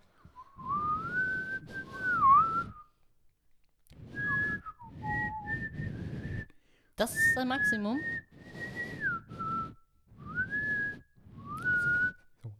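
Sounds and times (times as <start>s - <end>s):
person whistling a short melody: 0.2s - 2.9s, 4.0s - 12.5s
speech: 7.0s - 8.2s.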